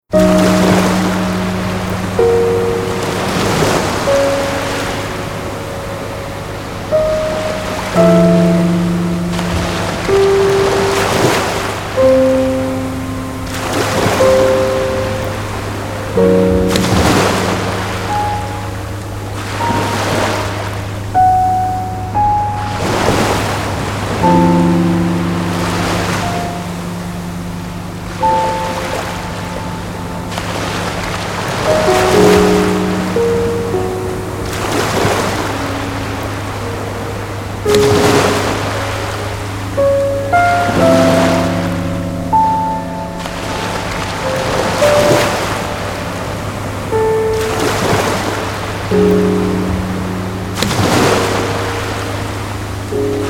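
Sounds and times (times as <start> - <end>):
wave piano: 0.0 - 53.2.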